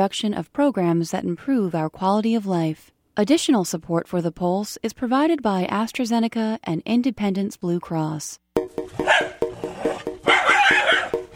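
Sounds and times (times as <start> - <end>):
speech: 0.0 - 9.2, 9.8 - 10.9
dog barking: 9.0 - 11.2.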